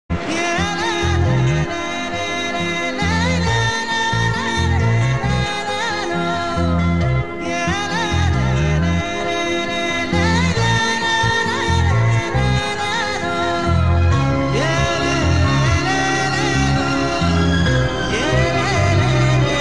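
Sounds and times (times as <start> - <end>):
sad Tamil background music ringtone: 0.2 - 19.6.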